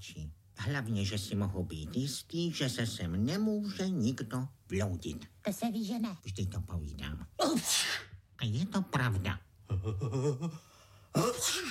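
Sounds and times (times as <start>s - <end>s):
speech: 0.0s - 11.6s
person sneezing in an acted scene: 7.4s - 8.2s, 11.2s - 11.6s.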